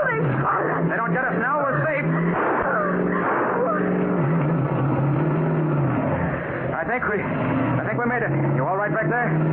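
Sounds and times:
car engine droning while driving fast across lawns and fields: 0.0s - 9.5s
speech: 7.0s - 9.5s.

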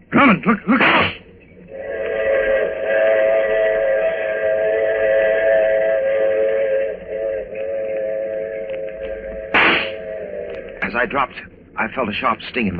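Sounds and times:
speech: 0.2s - 1.1s, 11.0s - 12.7s
train whistle blowing at a railway platform: 0.8s - 10.9s
sharp burst of noise: 0.8s - 11.4s.

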